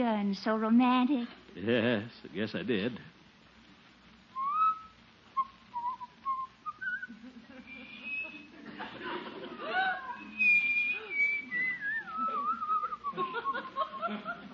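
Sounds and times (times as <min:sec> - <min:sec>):
speech: 0:00.0 - 0:03.2
man whistling a wandering, halting tune: 0:04.3 - 0:08.5, 0:09.9 - 0:13.7
man making breathy chuckling sounds: 0:07.0 - 0:11.4, 0:12.1 - 0:14.5.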